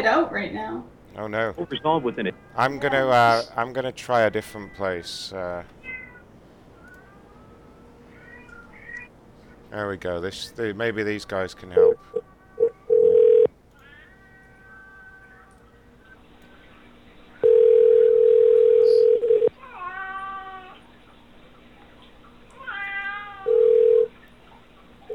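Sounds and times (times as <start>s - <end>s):
speech: 0.0s - 5.8s, 9.7s - 12.2s
cat meowing: 5.8s - 9.1s, 11.8s - 15.9s, 18.2s - 20.9s, 22.6s - 24.1s.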